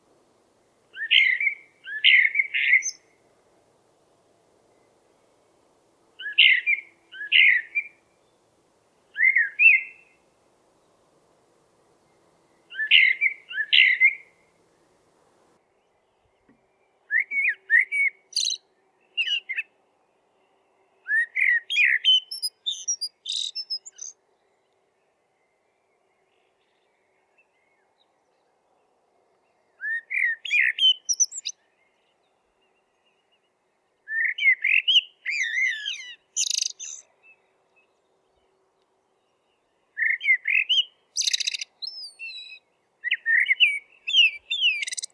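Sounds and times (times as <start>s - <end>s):
blackbird singing: 0.9s - 3.2s, 6.2s - 8.4s, 9.1s - 10.2s, 12.1s - 14.4s, 17.1s - 18.6s, 21.1s - 24.2s, 29.8s - 31.6s, 34.1s - 37.1s, 40.0s - 45.1s.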